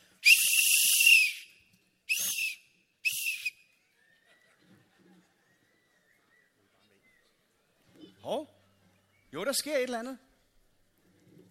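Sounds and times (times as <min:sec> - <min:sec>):
referee's whistle blasts: 0:00.2 - 0:01.5, 0:02.1 - 0:03.6
laughter: 0:03.9 - 0:07.2
speech: 0:09.4 - 0:10.3.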